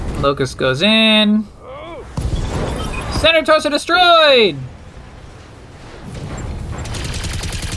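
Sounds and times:
speech: 0.2s - 1.5s, 3.2s - 4.7s
machine gun fire from a mech's guns in a video game: 6.1s - 7.7s.

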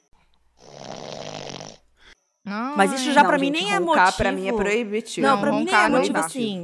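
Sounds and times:
voice imitating a loud rattling snore: 0.6s - 1.9s
speech: 2.5s - 6.6s.

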